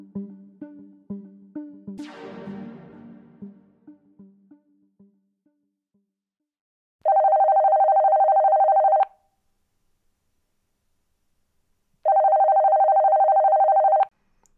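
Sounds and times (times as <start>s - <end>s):
telephone ringing with electronic trill: 7.0s - 9.1s, 12.0s - 14.1s.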